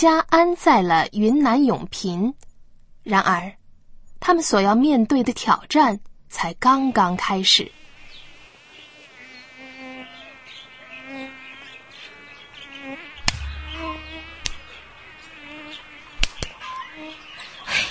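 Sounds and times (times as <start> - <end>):
speech: 0.0 - 2.4, 3.1 - 3.6, 4.2 - 7.8
high mosquito whine: 7.4 - 17.4
sharp slaps or knocks: 13.2 - 15.2, 16.2 - 16.6.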